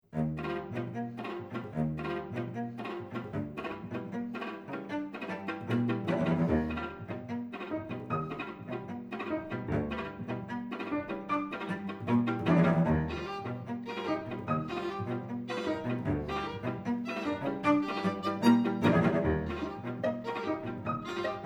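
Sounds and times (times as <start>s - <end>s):
piano quintet playing: 0.2s - 21.4s.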